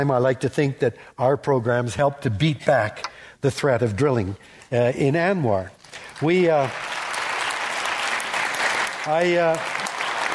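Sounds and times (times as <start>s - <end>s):
speech: 0.0s - 6.9s, 9.0s - 9.8s
audience applause at a talk: 6.0s - 10.3s.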